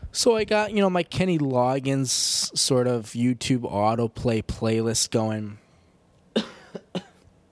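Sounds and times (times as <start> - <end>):
speech: 0.2 - 5.6, 6.4 - 6.6
person coughing: 6.3 - 7.2.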